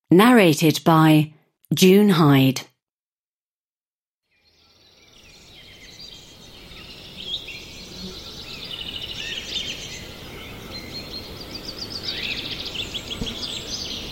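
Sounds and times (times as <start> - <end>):
speech: 0.1 - 2.7
birds chirping and trilling in a dense chorus: 4.4 - 14.1
faint insect hum: 4.5 - 14.1
steady low rustle of wind: 5.1 - 14.1.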